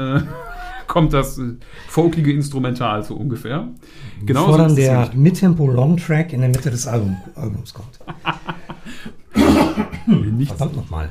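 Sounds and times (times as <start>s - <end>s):
laughter: 0.0s - 1.1s, 6.9s - 10.6s
speech: 0.0s - 11.1s
person coughing: 9.3s - 10.4s.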